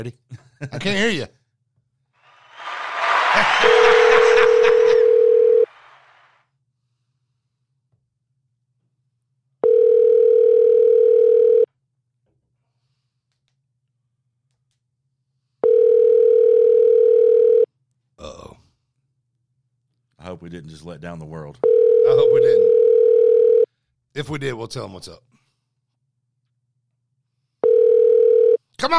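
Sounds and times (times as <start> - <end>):
speech: 0.0 - 1.4, 3.4 - 5.0, 20.4 - 22.8, 24.2 - 25.4
laughter: 2.3 - 6.2
telephone tones while a call is being placed: 3.7 - 5.7, 9.6 - 11.7, 15.6 - 17.7, 21.6 - 23.7, 27.6 - 28.6.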